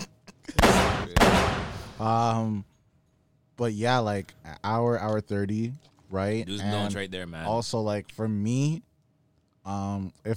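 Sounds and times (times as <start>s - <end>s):
gunshot sound effects: 0.6s - 2.0s
speech: 2.0s - 2.7s, 3.6s - 8.9s, 9.6s - 10.3s.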